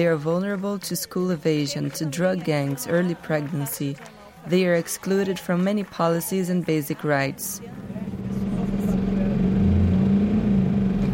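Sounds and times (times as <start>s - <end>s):
speech: 0.0s - 8.4s
faint murmuring voices: 0.0s - 9.4s
bus engine rumbling inside a moving vehicle: 7.3s - 11.1s.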